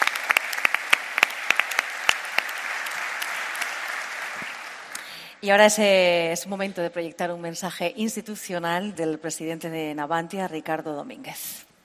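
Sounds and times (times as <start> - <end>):
audience applause: 0.0 - 5.2
speech: 5.4 - 11.7.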